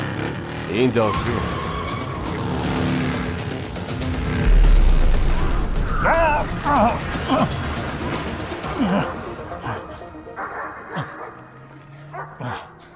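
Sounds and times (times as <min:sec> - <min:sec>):
high-displacement engine running: 0:00.4 - 0:08.6
speech: 0:00.7 - 0:01.6, 0:06.0 - 0:07.6, 0:08.8 - 0:09.9
dog barking and whimpering: 0:10.4 - 0:11.5, 0:12.1 - 0:12.5.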